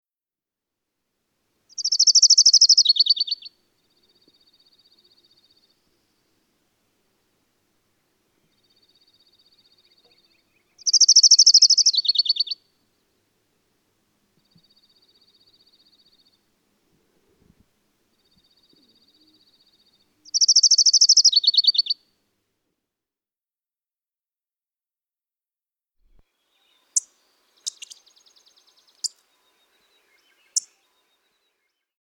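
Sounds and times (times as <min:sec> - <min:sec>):
Orange-crowned Warbler: 0:01.7 - 0:06.3, 0:08.4 - 0:12.6, 0:18.1 - 0:22.0, 0:26.3 - 0:31.9.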